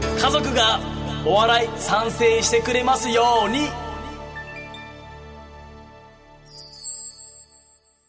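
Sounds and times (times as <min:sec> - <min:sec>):
speech: 0:00.2 - 0:03.8
shimmering shooting-star sparkle sound effect: 0:06.5 - 0:08.0.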